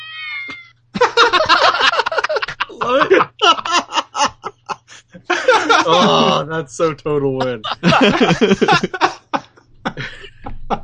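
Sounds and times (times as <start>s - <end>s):
cat meowing: 0.0s - 0.7s
laughter: 1.0s - 6.5s, 7.4s - 10.8s
speech: 2.8s - 3.8s, 5.8s - 9.2s.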